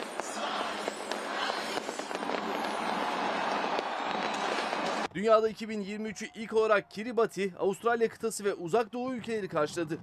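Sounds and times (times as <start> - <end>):
fireworks crackling and popping at a New Year celebration: 0.0 - 5.1
dense roar of crowd noise from people filling city squares: 0.0 - 7.2
speech: 5.2 - 10.0.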